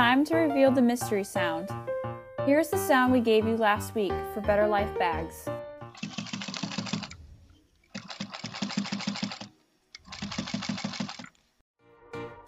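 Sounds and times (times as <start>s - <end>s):
speech: 0.0s - 5.6s
industrial sewing machine stitching leather in a bag-making workshop: 6.0s - 7.2s, 7.9s - 11.4s.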